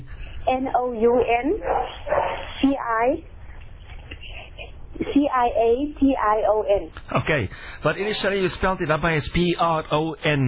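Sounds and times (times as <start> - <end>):
speech: 0.5 - 3.3, 5.1 - 10.4
dog barking and yelping: 1.0 - 2.7.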